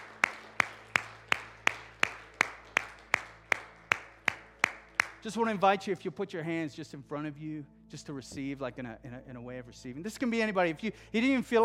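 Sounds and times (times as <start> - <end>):
hands clapping: 0.0 - 5.6
speech: 5.2 - 11.6.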